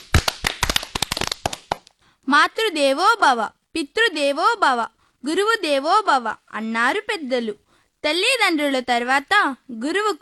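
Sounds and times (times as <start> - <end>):
small group clapping for children who sang a song: 0.0 - 1.9
speech: 2.3 - 10.2.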